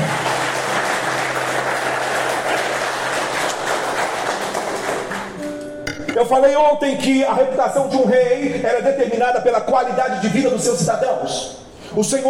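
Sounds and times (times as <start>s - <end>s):
large crowd applauding: 0.0s - 5.7s
speech: 6.2s - 12.2s.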